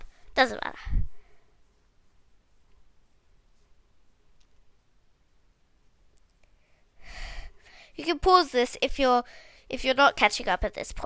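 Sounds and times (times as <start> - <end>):
speech: 0.4 - 1.1, 8.2 - 11.0
pen writing inside a box drawn on paper: 1.9 - 5.4.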